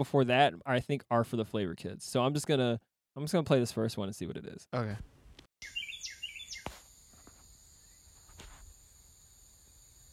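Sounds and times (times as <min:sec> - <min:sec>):
speech: 0:00.0 - 0:05.7
Carolina Wren singing loud repeated chirping phrases: 0:05.6 - 0:06.7.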